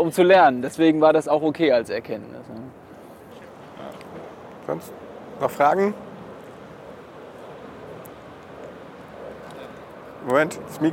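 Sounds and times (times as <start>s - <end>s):
speech: 0.0s - 2.8s, 4.7s - 6.0s, 10.2s - 10.9s
airplane passing overhead: 2.7s - 10.9s.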